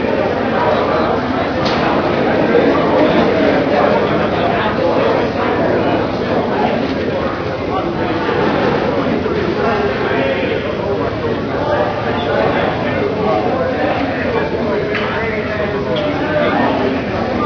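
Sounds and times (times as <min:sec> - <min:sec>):
apartments crowd: 0:00.0 - 0:17.4.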